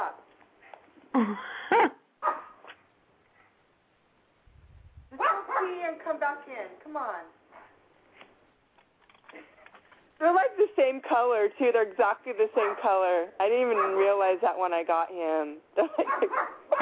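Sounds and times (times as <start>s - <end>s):
speech: 1.2s - 1.6s, 6.3s - 7.4s, 10.2s - 16.6s
dog barking: 2.2s - 2.7s, 5.2s - 5.8s, 13.7s - 14.0s, 16.0s - 16.7s.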